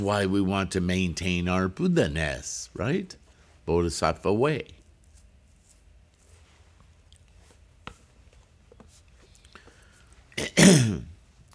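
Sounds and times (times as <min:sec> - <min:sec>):
speech: 0:00.0 - 0:04.8, 0:10.4 - 0:11.1
breaths: 0:09.2 - 0:10.3
person clearing throat, struggling to swallow: 0:10.3 - 0:11.2.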